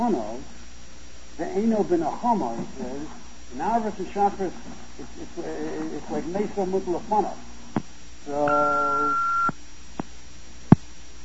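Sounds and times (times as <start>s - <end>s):
speech: 0.1s - 0.4s, 1.6s - 7.5s, 8.2s - 9.3s
electronic beep on a conference call line: 8.4s - 9.6s.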